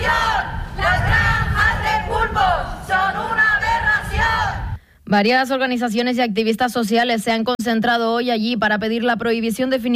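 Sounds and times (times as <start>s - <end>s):
crowd of protesters chanting slogans outdoors on a street: 0.0s - 4.8s
speech: 5.1s - 9.9s.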